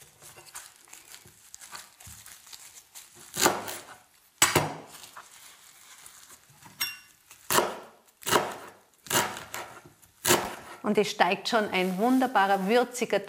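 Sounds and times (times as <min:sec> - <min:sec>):
knife chopping fresh wild herbs such as ground ivy and yarrow: 0:03.3 - 0:04.9, 0:07.5 - 0:10.8
speech: 0:10.9 - 0:13.2.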